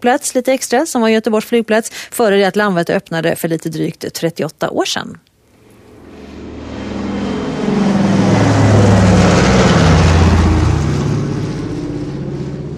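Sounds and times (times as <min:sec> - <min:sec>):
speech: 0:00.0 - 0:05.3
DC-3 propeller airliner droning at an airport: 0:05.5 - 0:12.7.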